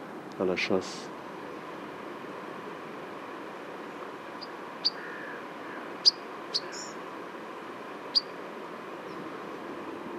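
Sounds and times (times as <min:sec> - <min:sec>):
hiss: 0:00.0 - 0:10.1
speech: 0:00.4 - 0:01.2
migrating pied flycatcher calls: 0:03.9 - 0:07.0, 0:08.0 - 0:08.4.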